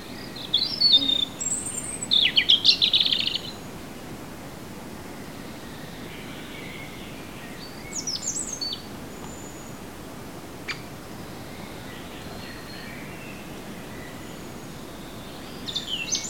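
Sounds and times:
European robin song with sweet whistles and twittering trills: 0.0 - 3.6, 5.6 - 9.8, 11.6 - 16.2
steady background hiss: 0.0 - 16.2.

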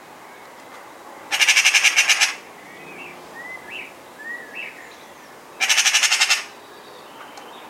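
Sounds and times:
Eurasian magpie Pica pica rattling: 1.3 - 2.4, 5.6 - 6.5.

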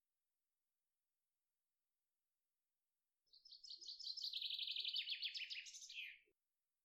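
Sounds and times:
common chaffinch Fringilla coelebs singing: 3.3 - 6.3.

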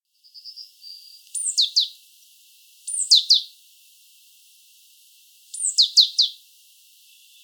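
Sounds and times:
Great tit calling: 0.3 - 2.0, 2.9 - 3.5, 5.5 - 6.4.

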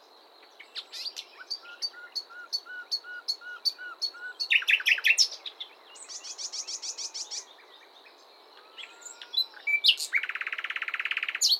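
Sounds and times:
Luscinia megarhynchos common nightingale singing soft low whistled notes: 0.0 - 11.5.

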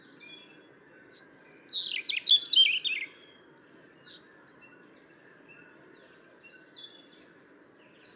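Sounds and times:
European robin Erithacus rubecula twittering: 1.4 - 3.6.

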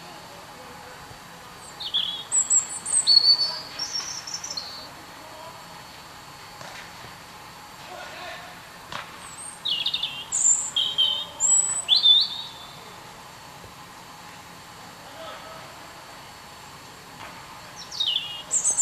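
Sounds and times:
European robin song: 1.6 - 4.9, 9.3 - 12.8, 17.8 - 18.8.

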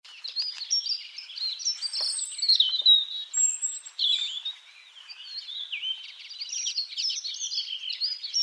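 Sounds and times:
European robin (Erithacus rubecula) singing: 0.0 - 8.4.

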